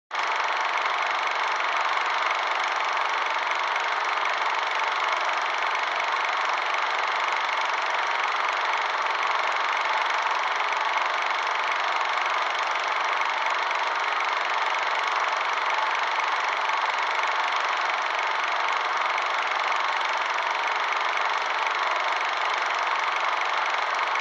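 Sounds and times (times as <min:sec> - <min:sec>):
movie projector running: 0:00.1 - 0:24.2.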